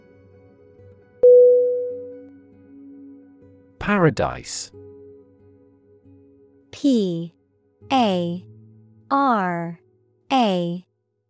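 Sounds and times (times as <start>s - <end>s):
telephone line tone after dialing a phone number: 1.2s - 2.1s
speech: 3.9s - 4.8s, 6.8s - 8.5s, 9.1s - 10.9s.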